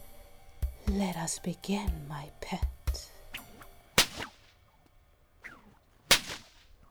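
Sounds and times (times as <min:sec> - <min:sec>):
speech: 0:00.9 - 0:02.8
whip swishing through the air: 0:03.3 - 0:04.8, 0:05.4 - 0:06.8
whip cracks by a woman: 0:03.3 - 0:06.8.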